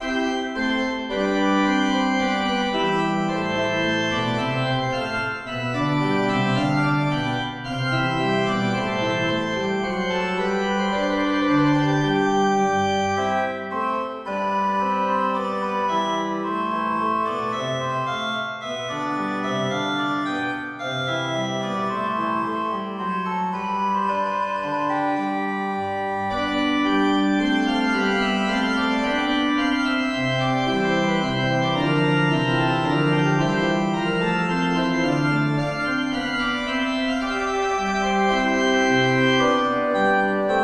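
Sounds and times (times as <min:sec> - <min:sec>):
organ gavotte in C major: 0:00.0 - 0:40.6.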